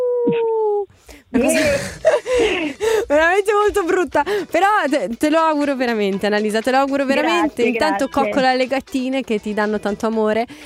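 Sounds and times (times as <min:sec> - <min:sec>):
person imitating a wolf howl: 0:00.0 - 0:00.9
speech: 0:00.3 - 0:00.7, 0:01.3 - 0:02.6, 0:03.4 - 0:10.6.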